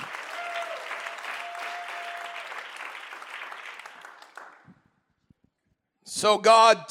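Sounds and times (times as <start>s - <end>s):
audience clapping: 0.0s - 4.9s
speech: 6.2s - 6.8s.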